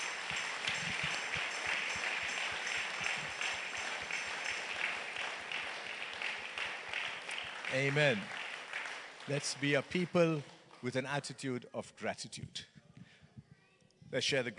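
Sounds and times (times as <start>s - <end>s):
large crowd applauding after a prayer: 0.0s - 10.8s
speech: 7.7s - 8.4s, 9.3s - 12.7s, 14.1s - 14.5s.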